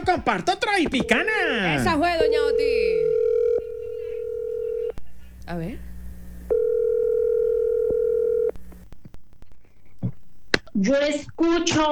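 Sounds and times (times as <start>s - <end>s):
speech: 0.0s - 3.2s, 5.5s - 5.9s, 10.8s - 11.9s
telephone dial tone while a call is being placed: 0.8s - 8.9s.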